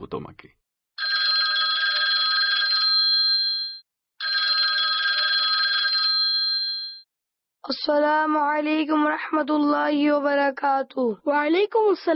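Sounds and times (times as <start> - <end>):
speech: 0.1 - 0.6, 7.7 - 12.1
telephone bell ringing for an incoming call: 1.0 - 7.1.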